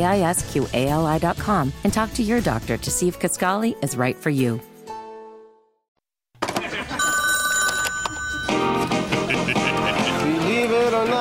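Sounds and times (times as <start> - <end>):
speech: 0.0 - 4.7
laughter: 6.4 - 7.3, 8.0 - 11.0
telephone bell ringing: 6.9 - 9.1.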